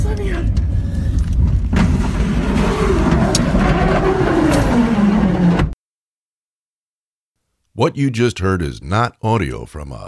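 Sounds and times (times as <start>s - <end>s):
car engine roaring, driving fast through fire on a winding mountain road: 0.8s - 5.8s
speech: 7.8s - 10.0s.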